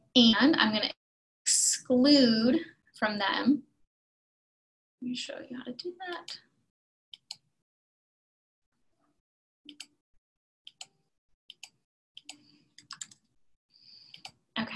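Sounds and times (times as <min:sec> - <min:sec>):
speech: 0:00.2 - 0:03.7, 0:05.0 - 0:06.5
computer mouse clicks: 0:07.2 - 0:07.4, 0:10.7 - 0:13.3, 0:14.1 - 0:14.4.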